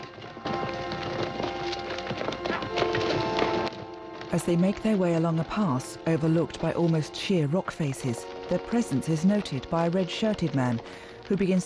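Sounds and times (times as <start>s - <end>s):
many horses' hooves pounding on a dirt trail: 0.0s - 11.6s
speech: 4.3s - 11.6s.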